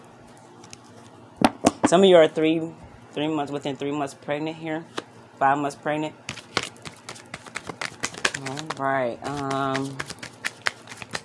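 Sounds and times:
speech: 0:01.9 - 0:06.2, 0:08.4 - 0:10.1
tarot cards being shuffled: 0:06.2 - 0:11.2.

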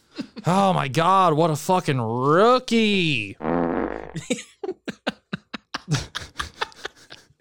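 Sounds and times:
speech: 0:00.4 - 0:03.5, 0:04.2 - 0:04.6
low buzzy fart with sputtering bursts: 0:03.4 - 0:04.2
laughter: 0:04.2 - 0:07.4.

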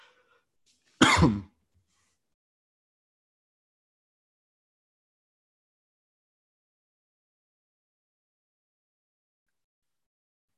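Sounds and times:
harsh throaty cough: 0:01.0 - 0:01.6.

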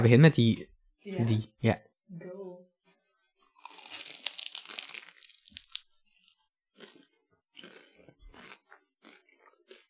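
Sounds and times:
speech: 0:00.0 - 0:02.4
crunching bite into a crisp raspberry-pistachio pastry: 0:03.5 - 0:09.8.

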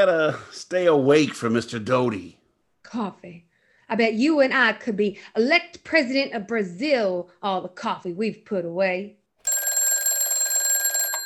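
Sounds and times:
speech: 0:00.0 - 0:09.2
telephone bell ringing with a rapid metallic trill: 0:09.4 - 0:11.2.

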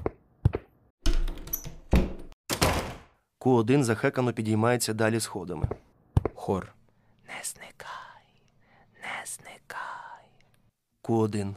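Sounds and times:
door slamming shut: 0:01.1 - 0:03.2
speech: 0:03.4 - 0:08.0, 0:11.1 - 0:11.5.

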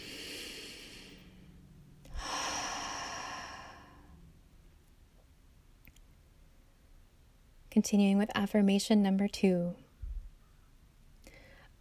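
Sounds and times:
deep breath: 0:00.0 - 0:04.2, 0:11.2 - 0:11.7
speech: 0:07.7 - 0:09.8.

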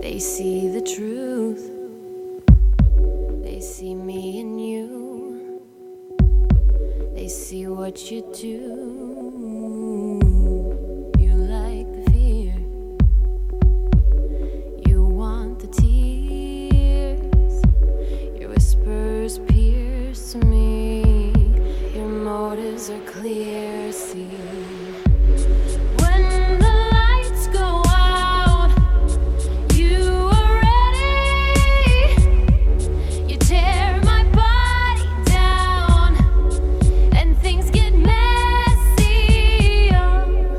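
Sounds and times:
speech: 0:00.0 - 0:01.8, 0:03.6 - 0:04.5, 0:07.3 - 0:09.7
pop song with thumping beat and female singer: 0:00.0 - 0:40.5.

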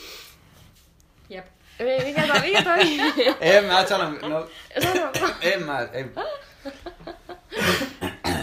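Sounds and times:
speech: 0:01.3 - 0:07.8
laughter: 0:02.0 - 0:04.2, 0:06.2 - 0:07.9
person coughing harshly: 0:04.8 - 0:05.6, 0:07.5 - 0:08.4.

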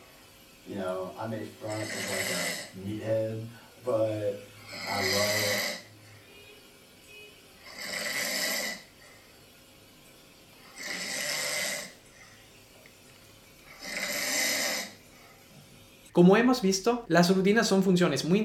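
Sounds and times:
speech: 0:00.7 - 0:05.8, 0:16.2 - 0:18.4
person snoring: 0:01.6 - 0:03.0, 0:04.6 - 0:05.9, 0:07.6 - 0:08.9, 0:10.7 - 0:12.0, 0:13.7 - 0:15.0.

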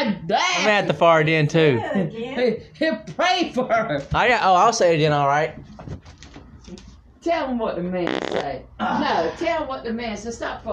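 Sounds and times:
noisy room background: 0:00.0 - 0:10.7
speech: 0:00.3 - 0:05.7, 0:06.7 - 0:10.7
loud buzzing fart-like noise blown with the lips: 0:08.0 - 0:08.6.

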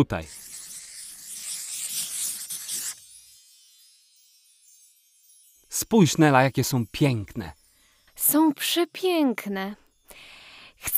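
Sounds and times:
speech: 0:00.0 - 0:00.5, 0:05.8 - 0:07.6, 0:08.2 - 0:10.9
scratching of a door being drawn on a surface: 0:00.0 - 0:03.1.

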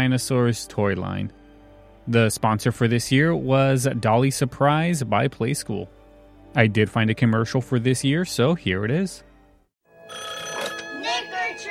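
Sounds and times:
speech: 0:00.0 - 0:01.4, 0:02.1 - 0:09.3
telephone ringing with bright electronic tone: 0:09.9 - 0:11.6.

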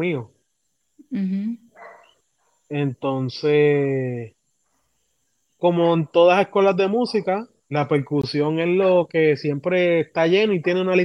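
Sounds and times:
speech: 0:00.0 - 0:00.4, 0:01.1 - 0:01.6, 0:02.7 - 0:04.4, 0:05.6 - 0:11.0
dog yelping: 0:01.7 - 0:02.2
dog barking: 0:01.7 - 0:02.7.

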